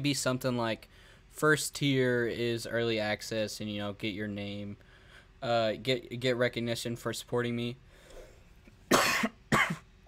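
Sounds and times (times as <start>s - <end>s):
speech: 0.0s - 7.9s
harsh coughs: 8.9s - 9.9s.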